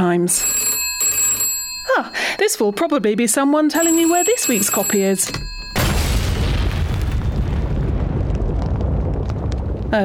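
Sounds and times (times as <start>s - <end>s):
speech: 0.0s - 0.7s, 2.0s - 5.6s
telephone exploding: 5.8s - 10.0s.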